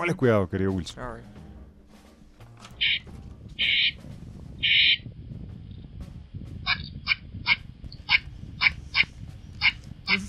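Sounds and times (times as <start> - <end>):
speech: 0.0 - 1.4
squirrel call drawn-out high chirps: 2.8 - 3.0, 3.6 - 4.0, 4.6 - 5.0, 6.7 - 10.2
squirrel call short sharp squeaks: 2.8 - 3.0, 3.6 - 4.0, 4.6 - 5.0
low rumble: 2.8 - 10.2.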